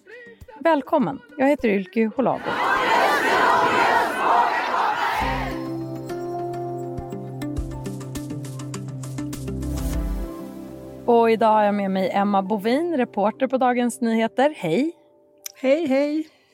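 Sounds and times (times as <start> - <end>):
speech: 0.3 - 2.7, 11.1 - 15.0, 15.6 - 16.3
large crowd at a demonstration chanting and shouting: 2.3 - 5.8
steady instrumental music: 5.2 - 14.0.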